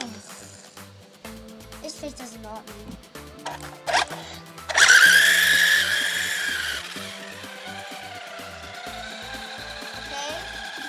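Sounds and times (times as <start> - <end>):
speech: 2.0 - 4.5
small motor humming and revving into a high whine: 3.4 - 10.8.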